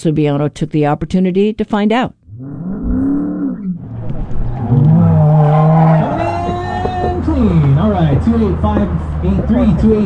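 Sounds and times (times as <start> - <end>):
speech: 0.0 - 2.6, 7.4 - 10.0
autocross race car exhausts growling as engines rev: 2.8 - 10.0
race car tires screeching through turns: 3.8 - 10.0.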